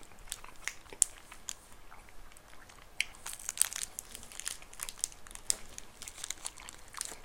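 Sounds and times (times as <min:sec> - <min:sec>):
crunchy bites into an ice cream monaka wafer with adzuki red bean: 0:00.0 - 0:01.6, 0:02.4 - 0:07.2
plastic wrapper crinkling and rustling while being torn open: 0:00.0 - 0:07.2.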